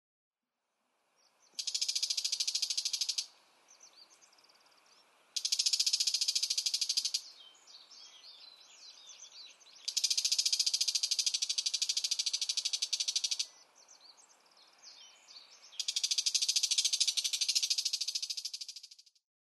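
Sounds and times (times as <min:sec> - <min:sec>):
bull-headed shrike calling in Utsunomiya: 0:01.5 - 0:03.3, 0:05.4 - 0:07.4, 0:09.8 - 0:13.6, 0:15.8 - 0:18.9.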